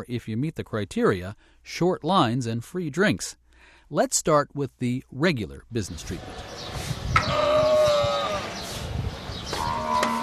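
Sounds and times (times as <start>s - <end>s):
speech: 0.0s - 7.5s
camel bleating at a camel dairy in the desert outside Dubai: 7.2s - 8.7s, 9.6s - 10.2s.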